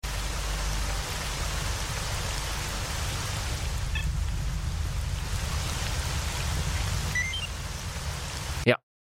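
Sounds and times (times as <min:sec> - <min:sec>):
steady dense rain at a damaged reactor in Ukraine: 0:00.0 - 0:08.8
faint short electronic beeps from a PDA: 0:07.2 - 0:07.6.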